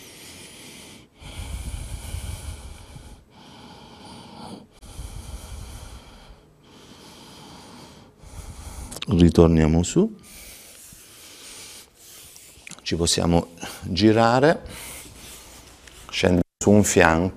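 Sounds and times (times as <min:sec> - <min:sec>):
slow deep breathing during yoga rest: 0:00.0 - 0:09.1, 0:10.2 - 0:12.7
speech: 0:09.1 - 0:10.3, 0:12.9 - 0:14.9, 0:16.2 - 0:17.3.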